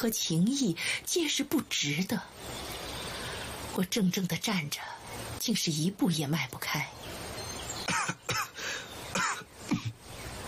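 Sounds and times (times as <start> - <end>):
speech: 0.0 - 2.8, 3.8 - 7.2
man coughing: 7.9 - 8.6, 9.2 - 10.0.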